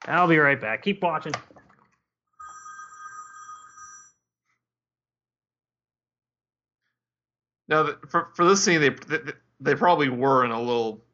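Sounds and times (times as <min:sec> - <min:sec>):
speech: 0:00.1 - 0:01.6, 0:07.7 - 0:11.0
phone ringing with an electronic bell tone: 0:02.4 - 0:04.2.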